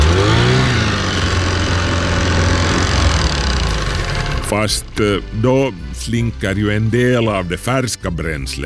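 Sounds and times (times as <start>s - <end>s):
small two-stroke engine revving: 0.0s - 5.9s
speech: 4.5s - 8.6s.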